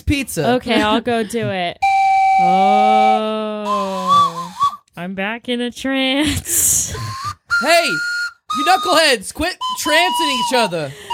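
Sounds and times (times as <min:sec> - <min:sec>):
speech: 0:00.1 - 0:01.8, 0:02.4 - 0:04.4, 0:05.0 - 0:07.0, 0:07.6 - 0:11.1
slide whistle: 0:01.8 - 0:04.8, 0:06.9 - 0:11.1.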